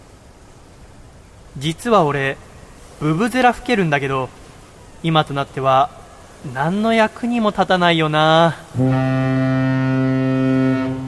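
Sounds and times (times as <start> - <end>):
speech: 1.6 - 4.4, 5.0 - 9.2
ship's steam turbine whistle blowing a deep horn blast: 8.7 - 11.0.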